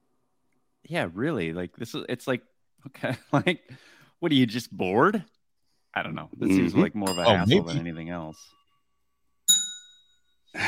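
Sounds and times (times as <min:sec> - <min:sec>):
speech: 0:00.9 - 0:05.3, 0:06.0 - 0:08.6
bright metallic bell ding sound effect: 0:07.1 - 0:07.8, 0:09.5 - 0:10.4.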